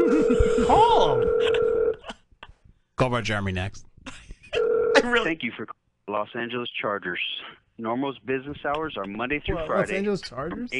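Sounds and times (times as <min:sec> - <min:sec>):
telephone tone through a speakerphone: 0:00.0 - 0:02.0
speech: 0:03.0 - 0:04.2, 0:05.0 - 0:10.7.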